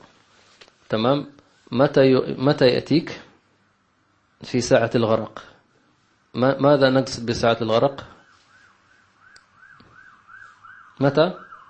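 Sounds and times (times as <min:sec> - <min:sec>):
speech: 0:00.9 - 0:03.2, 0:04.4 - 0:05.5, 0:06.3 - 0:08.2, 0:11.0 - 0:11.4
ambulance siren wailing in a rising-and-falling cycle: 0:08.0 - 0:11.6.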